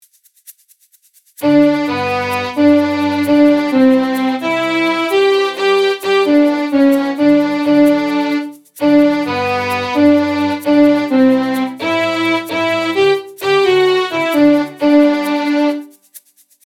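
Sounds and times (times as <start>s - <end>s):
music: 1.4s - 16.6s.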